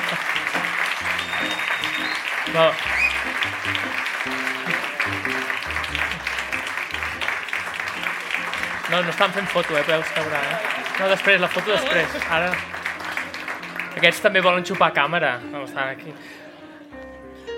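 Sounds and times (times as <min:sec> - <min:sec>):
laughter: 0:00.0 - 0:07.6, 0:08.2 - 0:13.4
audience applause: 0:00.0 - 0:14.9
speech: 0:02.6 - 0:02.9, 0:08.9 - 0:12.8, 0:14.0 - 0:16.4.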